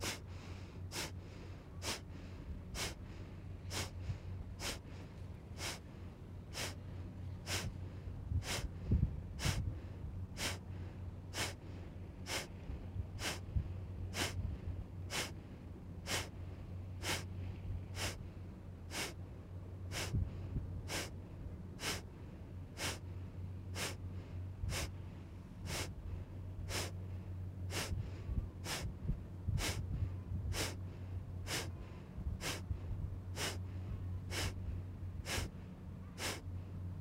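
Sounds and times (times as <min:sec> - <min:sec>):
short evenly spaced sniffs: 0:00.0 - 0:03.0, 0:03.7 - 0:04.0, 0:04.6 - 0:05.8, 0:06.6 - 0:06.8, 0:07.5 - 0:07.7, 0:08.4 - 0:08.7, 0:09.4 - 0:09.7, 0:10.4 - 0:10.6, 0:11.4 - 0:11.6, 0:12.3 - 0:12.5, 0:13.2 - 0:13.4, 0:14.2 - 0:14.4, 0:15.1 - 0:15.4, 0:16.1 - 0:16.3, 0:17.0 - 0:17.3, 0:18.0 - 0:18.2, 0:18.9 - 0:19.2, 0:19.9 - 0:20.2, 0:20.9 - 0:21.1, 0:21.8 - 0:22.0, 0:22.8 - 0:23.0, 0:23.8 - 0:24.0, 0:24.7 - 0:24.9, 0:25.7 - 0:25.9, 0:26.7 - 0:27.0, 0:27.7 - 0:28.0, 0:28.6 - 0:28.9, 0:29.6 - 0:29.8, 0:30.5 - 0:30.8, 0:31.5 - 0:31.8, 0:32.4 - 0:32.6, 0:33.4 - 0:33.7, 0:34.3 - 0:34.6, 0:35.2 - 0:36.5
rhythmic breaths in a deep breathing exercise: 0:00.0 - 0:19.2, 0:19.8 - 0:36.8
quiet low hum: 0:00.0 - 0:36.9.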